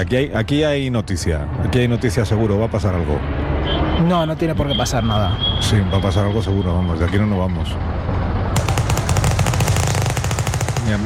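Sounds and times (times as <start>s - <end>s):
speech: 0.0s - 8.2s, 10.9s - 11.0s
sustained gunfire from gangsters shooting at each other: 8.6s - 11.0s.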